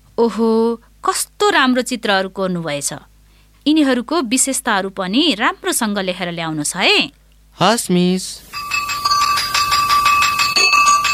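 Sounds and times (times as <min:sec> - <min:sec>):
speech: 0:00.2 - 0:08.8
school bell ringing at end of class period: 0:08.5 - 0:11.1.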